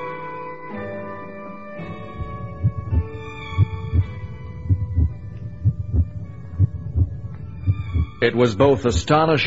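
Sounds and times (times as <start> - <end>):
heartbeat picked up by an audio sensor lowered into a drilled hole: 2.2 - 8.2
speech: 8.2 - 9.4.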